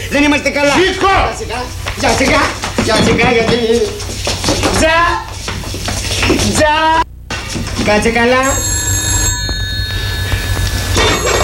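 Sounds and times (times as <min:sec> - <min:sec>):
low hum: 0:00.0 - 0:11.4
speech: 0:00.1 - 0:05.3, 0:06.5 - 0:08.8
telephone ringing with a bright metallic bell tone: 0:08.4 - 0:11.4.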